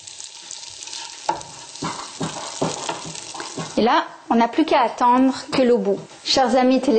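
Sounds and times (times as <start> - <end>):
tofu sizzling in a frying pan: 0.0 - 4.0
speech: 3.8 - 6.9.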